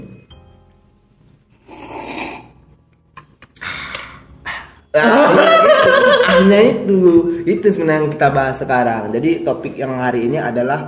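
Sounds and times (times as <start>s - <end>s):
loud airy slurping sips of coffee: 1.6s - 2.6s
laughter: 5.0s - 6.7s
speech: 5.0s - 10.8s.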